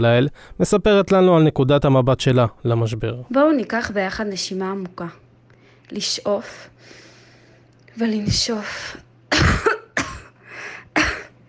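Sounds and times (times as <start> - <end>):
speech: 0.0 - 5.2, 5.9 - 7.0, 8.0 - 9.7
harsh breathy coughs: 9.3 - 11.4.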